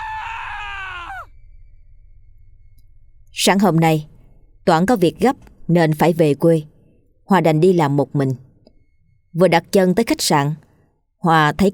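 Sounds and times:
woman screaming beside a bed: 0.0 - 1.3
speech: 3.4 - 4.1, 4.7 - 6.7, 7.3 - 8.4, 9.3 - 11.7.

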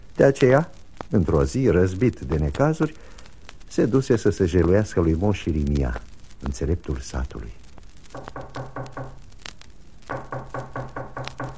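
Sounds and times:
speech: 0.2 - 7.6
knocking on a door: 8.2 - 9.2, 10.1 - 11.5.

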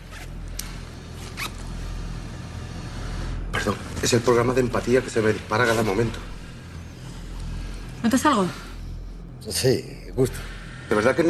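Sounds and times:
zipper being pulled down: 0.0 - 0.4, 1.2 - 1.8
low steady hum: 0.0 - 11.2
speech: 3.6 - 6.4, 8.0 - 8.6, 9.4 - 11.2.

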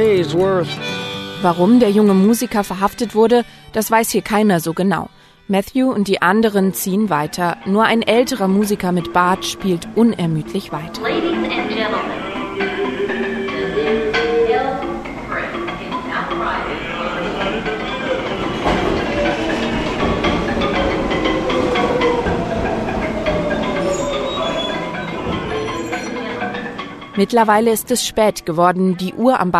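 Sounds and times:
speech: 0.0 - 12.2, 27.2 - 29.5
crowded subway train rumbling late at night: 7.1 - 28.4
indistinct passenger voices murmuring: 8.1 - 28.3
subway train wheels squealing: 17.0 - 27.0.

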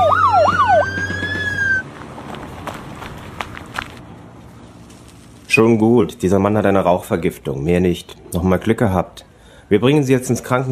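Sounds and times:
fire engine siren with a rapidly cycling wail: 0.0 - 1.9
speech: 5.6 - 10.7.

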